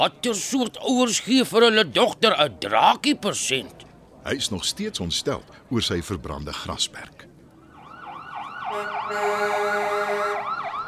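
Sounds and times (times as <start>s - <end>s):
speech: 0.0s - 7.3s, 8.7s - 10.2s
fire engine siren yelping: 7.6s - 10.8s
steady blaring horn tone: 8.7s - 10.8s.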